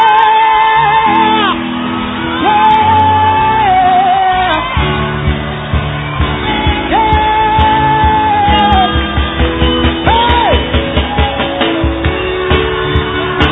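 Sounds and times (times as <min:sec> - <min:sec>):
audience shouting and whooping in a church: 0:00.0 - 0:13.5
pulsing rhythmic beat: 0:04.7 - 0:13.5.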